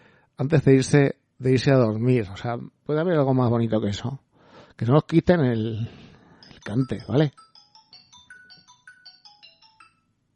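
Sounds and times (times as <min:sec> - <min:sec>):
speech: 0:00.4 - 0:04.2, 0:04.8 - 0:06.0, 0:06.6 - 0:07.4
mobile phone ringing: 0:05.6 - 0:10.2.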